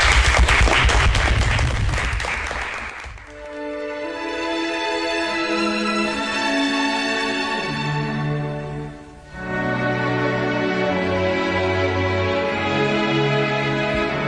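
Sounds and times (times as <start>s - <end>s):
dense loud applause from a group: 0.0s - 3.7s
sustained tonal music: 3.3s - 14.2s.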